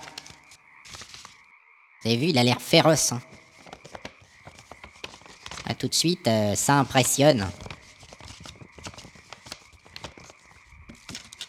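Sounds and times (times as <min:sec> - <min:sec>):
speech: 0:02.0 - 0:03.3, 0:05.8 - 0:07.7
galloping clip-clop knocks for a cardboard boar toy: 0:03.3 - 0:05.7, 0:07.5 - 0:11.4.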